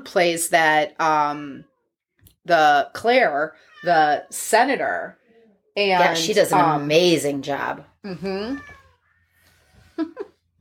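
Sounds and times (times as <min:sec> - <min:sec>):
speech: 0:00.0 - 0:01.7, 0:02.4 - 0:05.2, 0:05.8 - 0:08.8, 0:10.0 - 0:10.3
cat meowing: 0:08.4 - 0:09.2.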